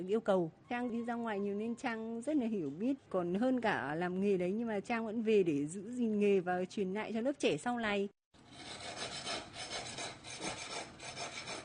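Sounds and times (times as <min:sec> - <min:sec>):
speech: 0:00.0 - 0:08.8
hand saw cutting wood in an inlay workshop: 0:08.5 - 0:11.6.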